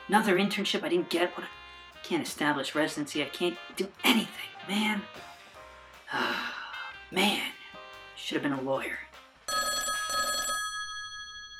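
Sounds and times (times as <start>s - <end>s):
speech: 0.1s - 5.3s, 6.1s - 6.5s, 7.1s - 7.6s, 8.2s - 9.1s
telephone bell ringing: 9.5s - 11.5s.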